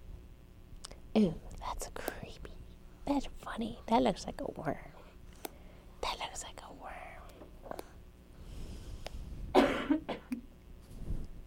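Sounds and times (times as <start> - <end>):
speech: 1.2 - 1.9, 3.1 - 4.9
person coughing: 9.5 - 10.4.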